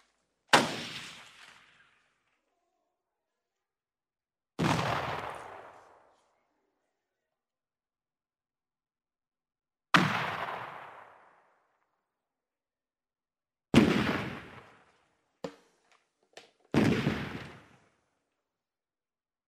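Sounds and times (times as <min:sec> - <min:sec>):
gunfire booming shots: 0:00.5 - 0:01.8, 0:04.6 - 0:05.8, 0:10.0 - 0:11.4, 0:13.8 - 0:14.9, 0:16.7 - 0:17.9.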